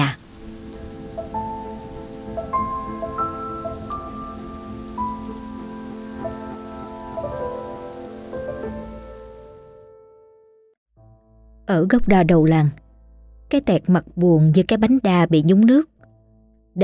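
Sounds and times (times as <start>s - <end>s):
sudden rain shower: 0.0s - 9.8s
speech: 11.7s - 12.8s, 13.5s - 15.9s.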